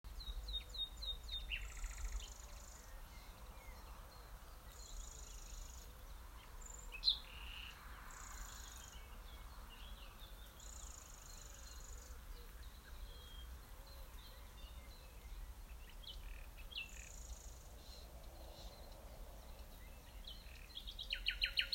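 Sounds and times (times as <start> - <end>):
nightingale singing: 0.1 - 21.7.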